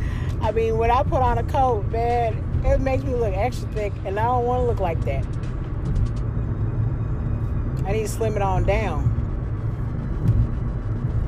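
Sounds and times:
road noise inside a moving car: 0.0 - 11.2
speech: 0.5 - 5.5, 7.9 - 9.1.

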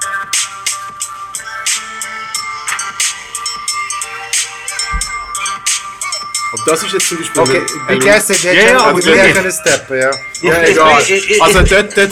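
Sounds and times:
steady beat with sharp percussive hits: 0.0 - 12.1
bell ringing within a music track: 3.6 - 12.1
speech: 6.6 - 12.1.

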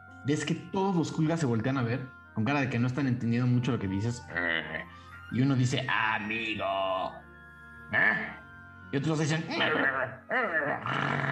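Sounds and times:
speech: 0.2 - 7.2, 7.9 - 11.3
person imitating creatures growling: 4.3 - 4.9, 7.9 - 8.4, 9.5 - 11.3.

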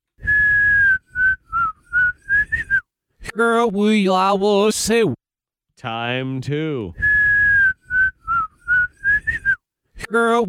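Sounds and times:
whistled melody played backwards: 0.2 - 2.8, 7.0 - 9.6
speech: 3.4 - 5.2, 5.8 - 7.0, 10.1 - 10.4.

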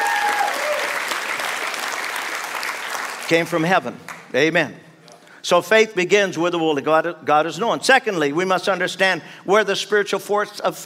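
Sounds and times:
large audience clapping: 0.0 - 4.3
speech: 3.3 - 10.8.

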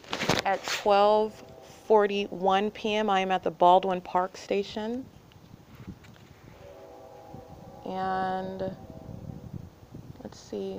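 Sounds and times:
commuter train rumbling at a station heard from aboard: 0.4 - 4.1, 6.3 - 10.7
sustained horn-like tone: 0.4 - 4.3, 6.4 - 10.1
speech: 0.5 - 5.2, 7.9 - 8.9, 10.3 - 10.7.

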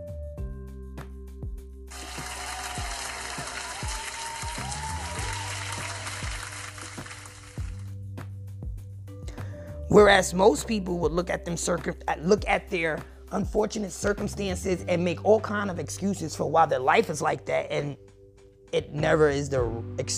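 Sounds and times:
steady music: 0.0 - 20.1
many hands clapping in applause: 1.9 - 7.9
speech: 9.9 - 18.0, 18.7 - 20.1.

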